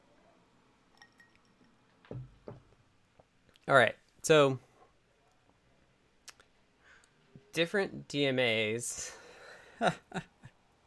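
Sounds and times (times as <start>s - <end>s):
glass clink: 0.9s - 1.8s
speech: 2.1s - 2.3s, 3.7s - 4.6s, 7.6s - 9.2s, 9.8s - 10.3s.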